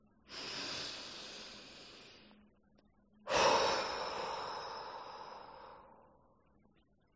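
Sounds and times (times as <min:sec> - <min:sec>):
long deep inhale: 0:00.3 - 0:02.4, 0:03.2 - 0:06.3.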